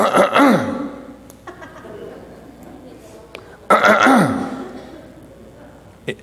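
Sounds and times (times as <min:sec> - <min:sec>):
man imitating a father clearing his throat: 0:00.0 - 0:01.1, 0:03.7 - 0:05.1
laughter: 0:01.0 - 0:06.0.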